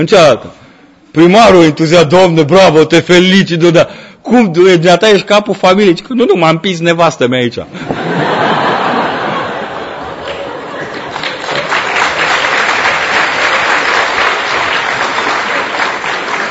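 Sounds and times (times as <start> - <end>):
speech: 0.0 - 8.3
people laughing: 7.8 - 12.5
crowd clapping: 9.1 - 16.4.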